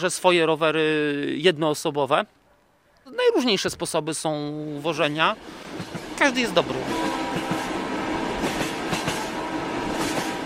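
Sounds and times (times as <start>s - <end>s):
speech: 0.0s - 2.4s, 3.1s - 7.6s
train rolling along the rails: 4.7s - 10.4s
wheels clickety-clack over track joints: 5.7s - 10.4s.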